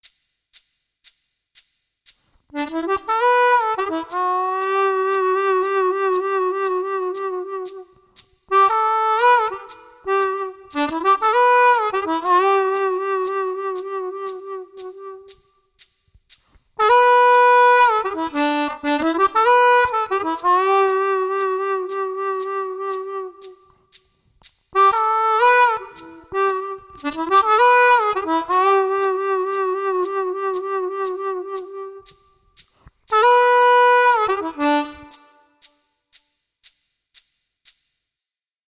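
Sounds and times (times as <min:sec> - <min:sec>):
harmonica riff in C: 0:02.6 - 0:07.9, 0:08.5 - 0:15.4, 0:16.8 - 0:23.6, 0:24.8 - 0:32.2, 0:33.1 - 0:35.5.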